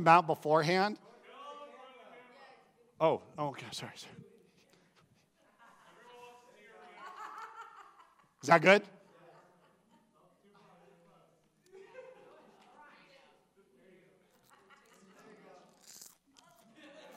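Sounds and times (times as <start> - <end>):
speech: 0.0 - 1.0, 3.0 - 4.3, 8.4 - 9.0
laughter: 5.2 - 13.0, 14.2 - 17.1
chewing a crisp lime-flavored edible cricket: 15.7 - 16.6.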